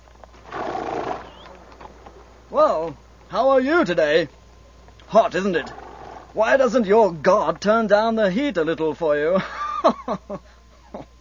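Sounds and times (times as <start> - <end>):
carriage horse neighing or snorting on a dusty village road: 0.4 - 2.2, 5.6 - 6.4
speech: 2.5 - 4.4, 5.1 - 11.1.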